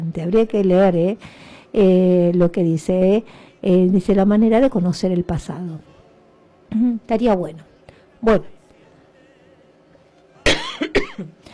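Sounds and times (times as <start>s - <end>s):
speech: 0.1s - 6.0s, 6.7s - 8.6s
faint trailing breath: 1.2s - 1.8s, 3.2s - 3.6s, 11.4s - 11.5s
person coughing: 10.5s - 11.4s.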